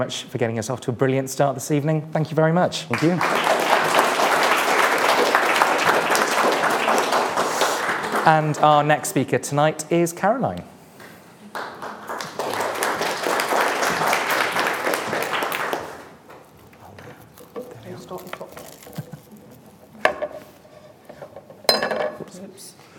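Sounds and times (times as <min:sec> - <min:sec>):
speech: 0:00.0 - 0:03.6, 0:08.2 - 0:10.7
applause: 0:02.9 - 0:09.2, 0:11.5 - 0:16.2
glass on a table bumped and nearly knocked over: 0:21.2 - 0:22.3.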